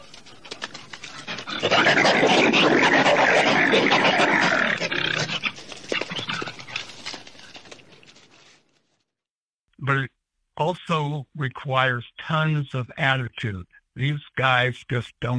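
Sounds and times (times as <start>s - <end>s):
wolverine roaring: 1.4s - 6.6s
speech: 11.4s - 15.3s.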